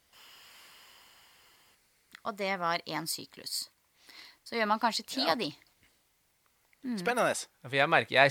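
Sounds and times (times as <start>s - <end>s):
exhale through the right nostril during a breathing exercise: 0.0s - 1.8s, 4.0s - 4.4s
speech: 2.3s - 3.8s, 4.5s - 5.6s, 6.8s - 8.2s.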